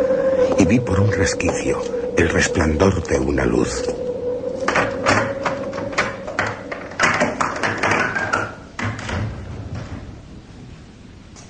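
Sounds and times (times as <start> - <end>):
firm footsteps: 0.0 - 8.1
speech: 0.6 - 4.0
heavy door creaking and grinding open: 4.5 - 10.6.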